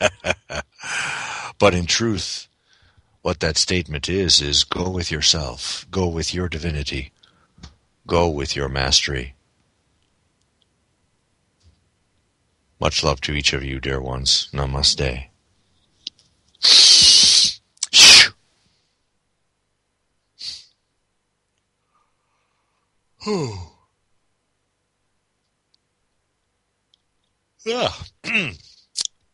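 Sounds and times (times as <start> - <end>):
laughter: 0.0 - 1.0
speech: 1.6 - 2.5, 3.2 - 7.2, 8.1 - 9.4, 12.8 - 15.3, 23.2 - 23.8, 27.6 - 28.7
harsh noise bursts: 16.6 - 18.3
person yawning: 16.6 - 18.3, 23.2 - 23.8.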